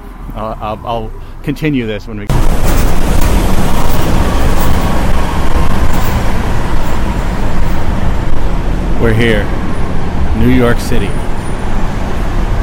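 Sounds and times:
bus engine drone: 0.0s - 12.6s
road noise: 0.0s - 12.6s
speech: 0.4s - 2.3s, 9.0s - 9.7s, 10.3s - 11.2s.

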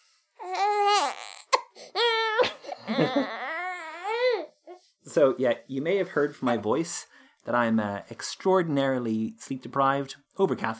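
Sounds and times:
newborn baby boy crying: 0.4s - 4.8s
speech: 2.9s - 3.4s, 5.2s - 10.7s.

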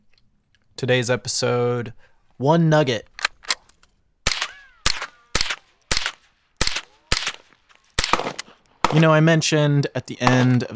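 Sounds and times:
speech: 0.8s - 3.1s, 8.9s - 10.7s
AK rifle gunshots shooting at bottles: 4.3s - 9.5s, 10.2s - 10.7s.

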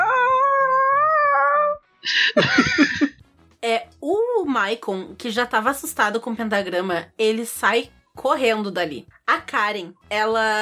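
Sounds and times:
person's voice imitating a cat in heat meowing: 0.0s - 1.8s
speech: 2.0s - 3.0s, 4.6s - 10.6s
laughter: 2.1s - 3.2s.

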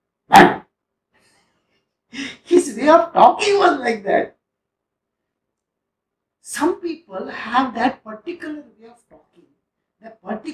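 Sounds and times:
person imitating a dog bark: 0.3s - 0.7s
speech: 2.8s - 4.4s, 6.6s - 9.2s, 10.0s - 10.5s.

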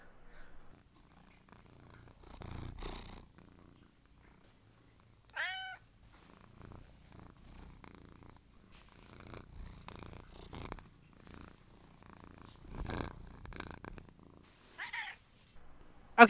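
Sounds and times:
female cat purring: 0.0s - 16.2s
cat meow-like chirps: 5.3s - 5.8s.

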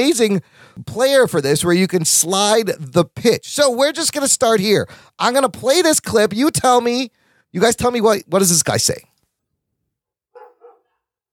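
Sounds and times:
speech: 0.0s - 9.1s
dog barking: 10.3s - 11.2s.

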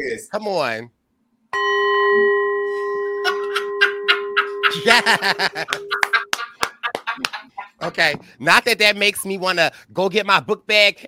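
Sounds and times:
speech: 0.0s - 2.3s, 4.7s - 6.1s, 7.2s - 11.0s
school bell ringing: 1.6s - 6.8s
laughter: 3.2s - 8.0s.

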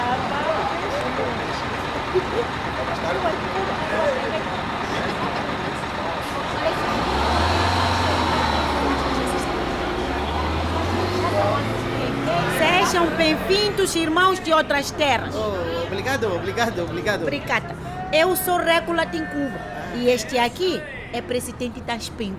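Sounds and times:
bus engine rumbling as it slows to a stop: 0.0s - 22.3s
crowd noise and indistinct voices in the village of Nguva: 0.0s - 22.3s
people chanting in welcome: 6.6s - 13.8s
speech: 13.2s - 22.3s.

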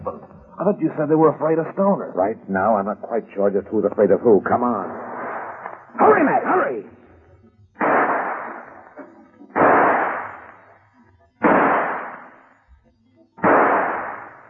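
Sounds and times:
speech: 0.1s - 5.1s, 6.0s - 6.9s
gunshots in a crime-drama confrontation: 4.9s - 6.8s, 7.8s - 10.8s, 11.4s - 12.6s, 13.4s - 14.4s.

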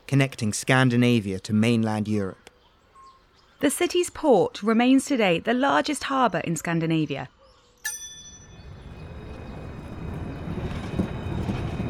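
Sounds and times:
speech: 0.1s - 2.4s, 3.6s - 8.0s
bright tram bell ding: 7.8s - 9.0s
tram in Gothenburg Sweden rumbling along its rails: 8.2s - 11.8s.

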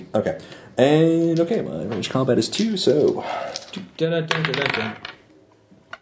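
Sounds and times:
speech: 0.0s - 5.1s
dice rolling on a hard table in a game: 3.5s - 5.3s.

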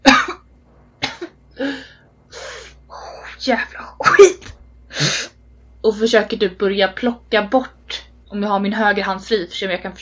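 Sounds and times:
person coughing: 0.0s - 0.4s, 1.0s - 1.4s, 4.0s - 5.3s
speech: 3.4s - 5.2s, 5.9s - 9.9s.

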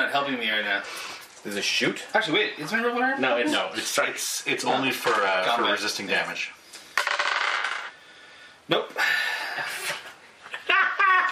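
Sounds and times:
speech: 0.0s - 6.6s, 8.7s - 9.8s
dice rattling and clattering across a hard tabletop: 6.9s - 8.0s
laughter: 10.5s - 11.3s.

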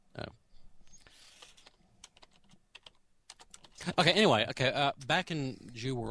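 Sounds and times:
typing on a computer keyboard: 1.3s - 4.0s
speech: 3.9s - 6.0s.

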